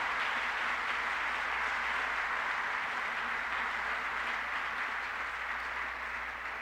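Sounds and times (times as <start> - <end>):
large audience applause: 0.0 - 6.6.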